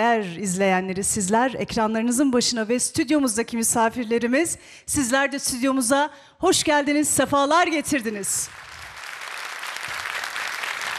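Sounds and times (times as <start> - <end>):
speech: 0.0 - 8.7
studio audience applause at a televised music show: 8.5 - 10.9.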